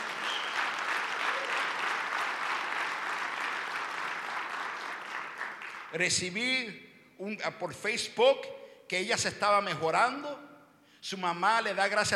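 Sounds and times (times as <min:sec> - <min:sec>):
large church audience applauding: 0:00.0 - 0:06.0
speech: 0:05.9 - 0:12.1.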